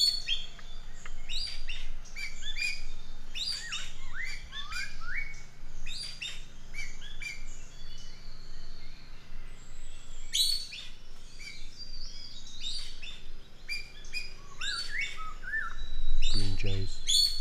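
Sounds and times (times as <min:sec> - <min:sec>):
common green magpie calling with sharp chirps, slurred whistles and squeaky notes: 0:01.3 - 0:07.6, 0:10.3 - 0:17.4.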